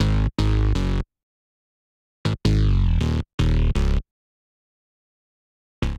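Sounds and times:
bassline in G# minor: 0.0s - 1.0s, 2.3s - 4.0s.

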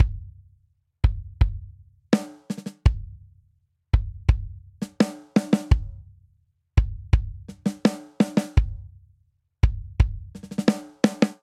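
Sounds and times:
straight eighths rock drum intro at 84 bpm: 2.2s - 3.0s, 4.0s - 5.9s, 6.8s - 8.8s, 9.6s - 11.4s.

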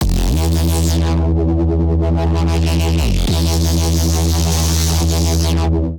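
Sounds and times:
bassline in F major: 0.0s - 5.9s.

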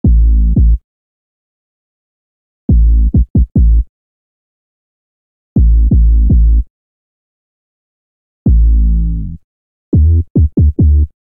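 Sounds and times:
A minor bassline at 83 bpm: 0.0s - 0.8s, 2.7s - 3.9s, 5.6s - 6.7s, 8.5s - 9.4s, 10.0s - 11.2s.

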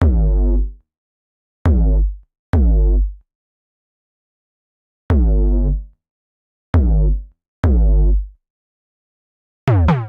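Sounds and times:
bass line in G minor at ninety-five bpm: 0.0s - 0.8s, 1.7s - 3.2s, 5.1s - 5.9s, 6.8s - 8.3s, 9.7s - 10.0s.

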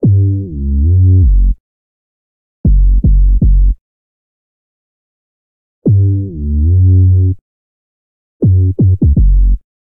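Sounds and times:
bassline in F sharp minor: 0.0s - 1.6s, 2.7s - 3.8s, 5.8s - 7.4s, 8.4s - 9.6s.

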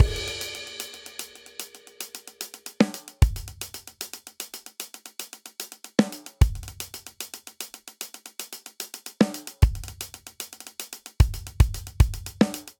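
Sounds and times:
triplet hip hop drum breakdown at 75 bpm in 4 4: 0.0s - 12.7s.

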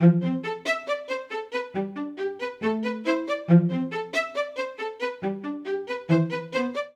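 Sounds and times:
string quartet phrase in A minor from MIDI clips: 0.0s - 6.9s.

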